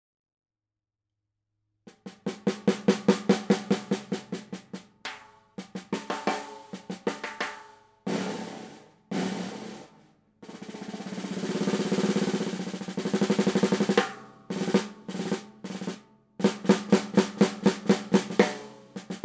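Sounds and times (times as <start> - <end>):
5x14 snare drum: 1.9 - 19.2.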